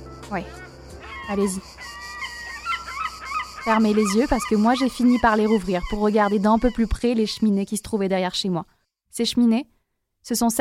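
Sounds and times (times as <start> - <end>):
speech: 0.3 - 0.7, 1.3 - 2.0, 3.6 - 10.5
seagulls squawking by the sea: 0.5 - 7.5.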